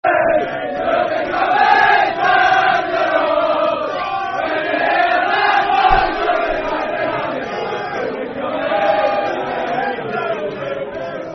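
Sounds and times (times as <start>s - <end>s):
football crowd chanting a soccer song in Northern Ireland: 0.0s - 11.3s.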